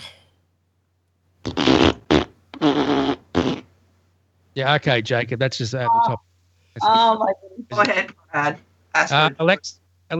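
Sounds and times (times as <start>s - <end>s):
smart speaker playing a fart sound effect: 1.4s - 3.7s
speech: 4.6s - 10.1s.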